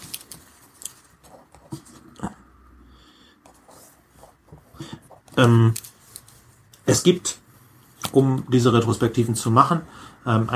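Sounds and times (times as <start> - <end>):
handwriting with pen on paper: 1.2 - 2.2, 3.5 - 5.5
speech: 5.4 - 5.8, 6.9 - 7.4, 8.1 - 10.5.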